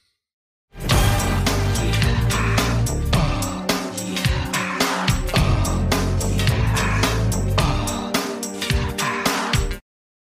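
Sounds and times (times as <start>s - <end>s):
deep bassline: 0.8s - 8.1s
early-1990s pop song: 0.8s - 9.8s
punchy steady drum beat: 0.8s - 9.8s.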